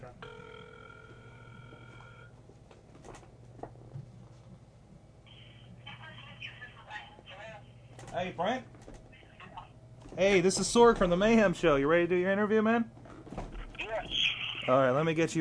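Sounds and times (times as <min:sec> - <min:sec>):
electronic telephone ringing tone: 0:00.1 - 0:02.4
speech: 0:08.2 - 0:08.7, 0:10.2 - 0:13.0, 0:14.7 - 0:15.3.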